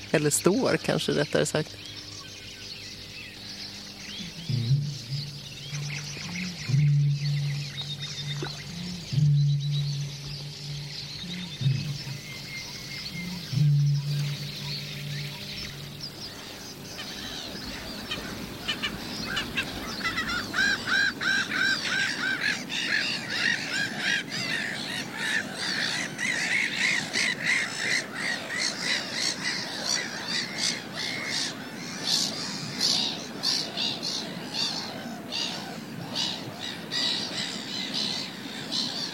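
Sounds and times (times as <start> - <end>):
black-headed gulls and terns calling: 0.0 - 39.1
speech: 0.1 - 2.0
short low hum: 1.6 - 21.6.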